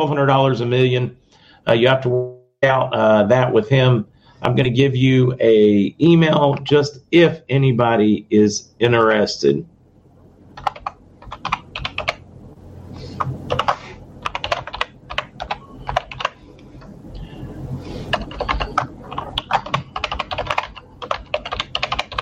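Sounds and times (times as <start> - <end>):
speech: 0.0 - 9.7
low hum: 0.0 - 22.2
typing on a computer keyboard: 10.6 - 12.2, 13.2 - 16.4, 18.0 - 22.2.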